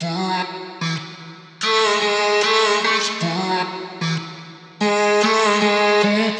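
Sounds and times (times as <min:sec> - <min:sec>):
vocal loop in E major: 0:00.0 - 0:06.3.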